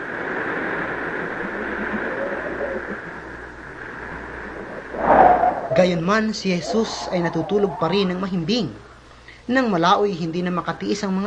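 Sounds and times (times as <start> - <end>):
churning storm waves slapping against a boat: 0.0 - 4.9
strong wind: 0.0 - 9.0
speech: 5.8 - 8.9, 9.5 - 11.2.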